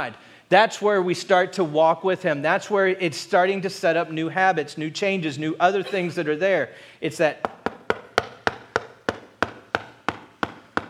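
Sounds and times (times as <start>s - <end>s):
speech: 0.0s - 7.6s
knocking on wood: 7.4s - 10.8s.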